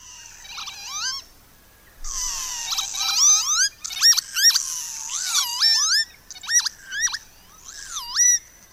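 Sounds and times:
eerie bird song of a declining species: 2.0s - 8.7s.

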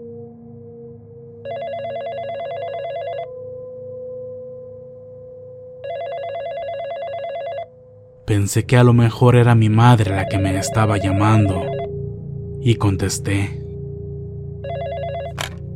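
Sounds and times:
cell phone ringing with trilling electronic tone: 1.4s - 3.4s, 5.8s - 7.8s, 10.0s - 11.9s, 14.6s - 15.7s
speech: 8.3s - 11.8s, 12.6s - 13.6s.

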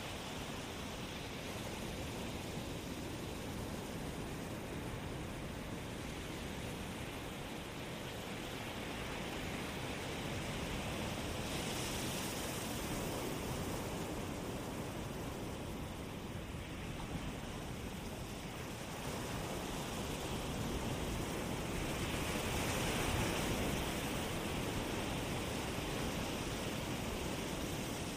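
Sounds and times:
ocean waves washing onto the shore: 0.0s - 28.1s.

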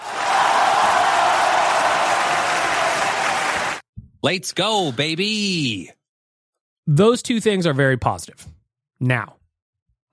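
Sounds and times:
round of applause from a crowd: 0.0s - 3.8s
speech: 4.2s - 6.0s, 6.9s - 9.4s.

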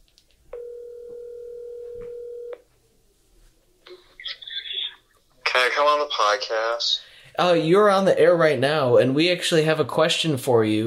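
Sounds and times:
ringback tone of an outgoing phone call: 0.6s - 2.6s
speech: 5.7s - 10.8s.

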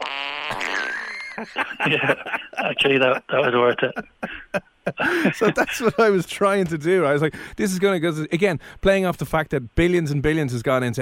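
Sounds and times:
synthetic fart noise from a small smart speaker: 0.0s - 1.2s
speech: 0.5s - 10.9s
laughter: 0.6s - 6.3s.

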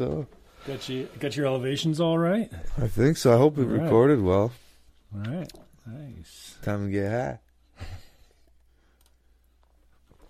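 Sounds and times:
speech: 0.0s - 8.0s
computer mouse clicking: 8.9s - 9.7s.

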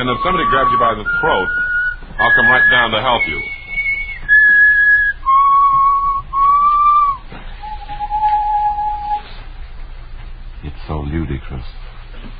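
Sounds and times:
speech: 0.0s - 3.6s, 11.5s - 11.8s
person whistling a short tune: 0.0s - 9.3s.

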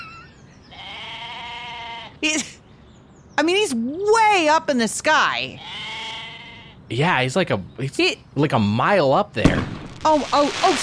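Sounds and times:
goat bleating: 0.7s - 2.2s, 5.5s - 6.8s
speech: 2.2s - 2.5s, 3.4s - 5.8s, 6.9s - 10.8s.

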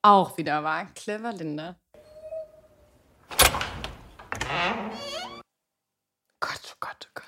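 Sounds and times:
speech: 0.0s - 1.8s
door creaking open: 3.2s - 5.5s.

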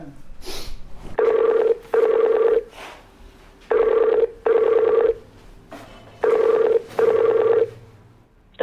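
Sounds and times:
phone line's double ringing tone: 1.2s - 2.7s, 3.7s - 5.2s, 6.2s - 7.8s.

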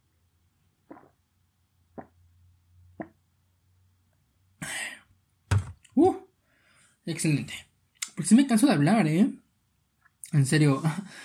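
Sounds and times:
person gulping water: 0.8s - 1.3s, 1.9s - 2.2s, 3.0s - 3.2s
sharp little throat sound: 0.9s - 1.2s, 2.0s - 2.2s
speech: 7.1s - 9.4s, 10.3s - 11.2s.

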